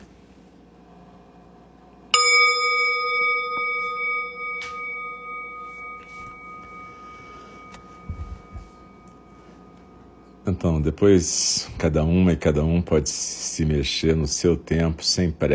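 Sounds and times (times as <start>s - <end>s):
meditation bell struck and ringing: 2.1s - 11.3s
speech: 10.5s - 15.5s.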